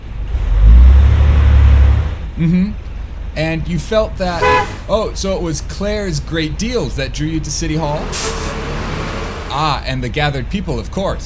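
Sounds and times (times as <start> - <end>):
heavy bus engine rumbling and revving: 0.0 - 3.3, 4.2 - 5.4, 6.0 - 10.3
speech: 2.4 - 2.8, 3.4 - 8.6, 9.6 - 11.2.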